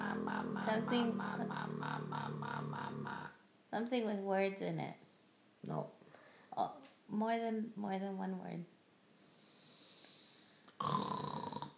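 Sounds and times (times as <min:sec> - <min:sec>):
person making a raspy snort imitating a pig's snore: 0:00.0 - 0:03.4, 0:10.8 - 0:11.7
speech: 0:00.7 - 0:05.0, 0:05.6 - 0:06.0, 0:06.6 - 0:08.8.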